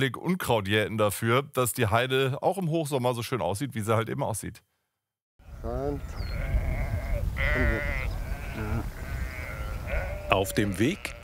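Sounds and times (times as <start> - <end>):
speech: 0.0 - 4.7, 5.6 - 6.5, 7.4 - 8.0, 10.3 - 11.2
large flock of sheep bleating while grazing on a heath: 6.0 - 11.2.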